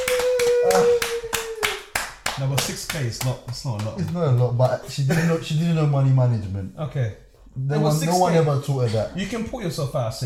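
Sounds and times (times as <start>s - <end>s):
audience clapping: 0.0s - 5.0s
speech: 2.4s - 10.2s.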